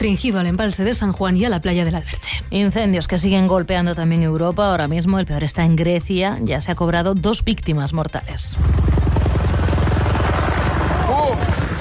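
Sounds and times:
speech: 0.0s - 9.3s
firefighting helicopter rotor noise: 8.5s - 11.7s
rising and falling whine: 8.6s - 11.7s.

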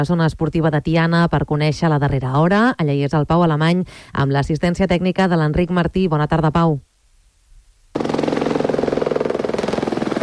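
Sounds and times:
speech: 0.0s - 6.9s
helicopters flying to drop water on a wildfire: 8.0s - 10.2s.

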